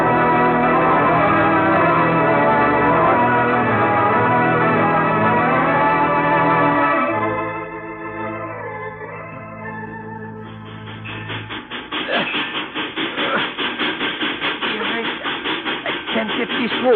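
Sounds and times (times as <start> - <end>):
loud rhythmic train clattering: 0.0 - 5.6, 10.4 - 16.9
approaching train engine droning and chugging: 0.0 - 7.3, 10.3 - 16.9.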